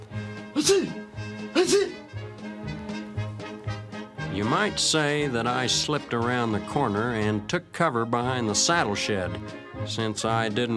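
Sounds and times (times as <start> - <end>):
speech: 0.6 - 2.1, 4.4 - 10.7
voice imitating a dog sneezing: 0.6 - 2.1.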